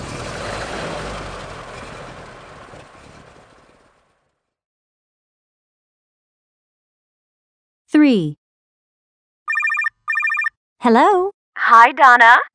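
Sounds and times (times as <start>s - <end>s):
boat engine starting on a fishing trip: 0.0s - 4.4s
speech: 8.0s - 8.4s, 10.8s - 12.5s
quick beeping tones: 9.5s - 10.5s.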